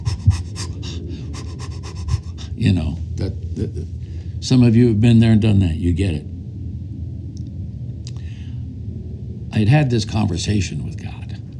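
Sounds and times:
human voice imitating Lamaze breathing during childbirth: 0.0s - 2.6s
speech: 2.6s - 6.3s, 9.6s - 11.1s.

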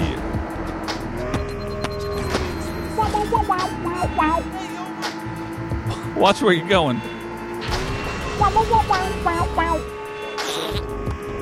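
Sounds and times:
racing video game car engine droning: 0.0s - 11.4s
chirpy electronic beeps in a racing video game: 1.4s - 3.4s
speech: 6.2s - 7.1s, 8.5s - 9.9s.

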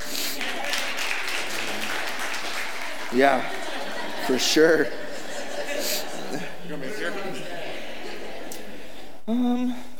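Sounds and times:
morning audience applauding a volunteer: 0.0s - 4.9s
laughter: 0.0s - 9.2s
speech: 3.1s - 3.6s, 4.3s - 5.0s, 6.3s - 7.5s, 9.3s - 9.9s.

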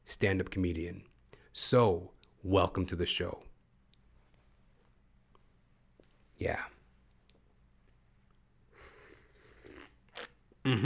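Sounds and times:
speech: 0.1s - 3.5s, 6.4s - 6.8s, 10.6s - 10.8s
slurping sips of coffee from a cup: 8.8s - 10.4s.

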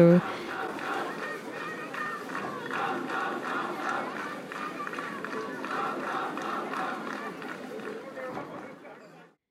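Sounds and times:
speech: 0.0s - 0.4s
large protest crowd chanting slogans: 0.0s - 8.8s.

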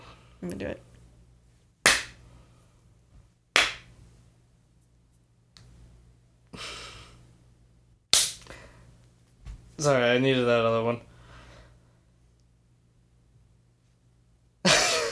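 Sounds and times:
speech: 0.4s - 0.9s, 9.8s - 11.1s
sharp hand claps as sync marks for editing: 1.8s - 2.2s, 3.6s - 3.9s, 8.2s - 8.5s.

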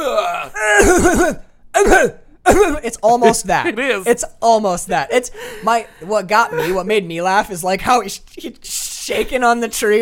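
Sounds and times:
voice imitating a movie character's gagging cough: 0.0s - 3.4s
speech: 3.0s - 10.0s.

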